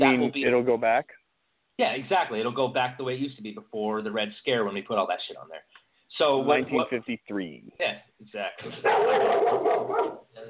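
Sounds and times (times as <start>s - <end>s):
speech: 0.0s - 1.2s, 1.8s - 10.4s
dog barking: 8.8s - 10.3s.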